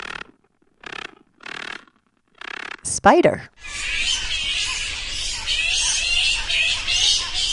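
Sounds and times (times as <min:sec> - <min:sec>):
speech: 0:02.8 - 0:04.3
bats chattering in high-pitched squeaks and chirps: 0:03.6 - 0:07.5.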